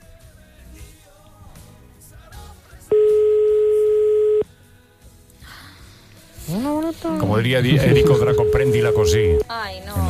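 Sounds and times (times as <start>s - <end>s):
music: 0.0s - 10.0s
outgoing phone call ringback tone: 2.9s - 4.4s, 7.6s - 9.5s
speech: 6.9s - 10.0s.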